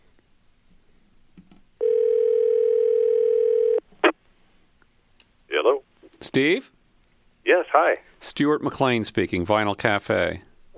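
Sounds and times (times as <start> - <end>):
telephone dial tone as a call is placed: 1.8 - 3.8
speech: 6.2 - 6.8, 7.5 - 10.5.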